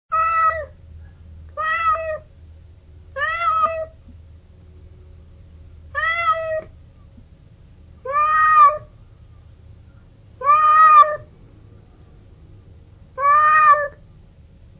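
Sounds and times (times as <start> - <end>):
hungry cat meowing: 0.1 - 0.7, 1.6 - 2.3, 3.2 - 4.0, 6.0 - 6.7, 8.0 - 8.9, 10.4 - 11.3, 13.2 - 14.0
low steady hum: 0.1 - 14.7.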